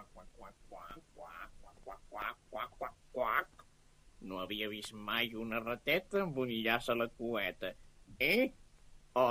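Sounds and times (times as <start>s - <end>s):
person imitating a duck with nasal quacks: 0.0s - 3.6s
speech: 4.2s - 8.6s.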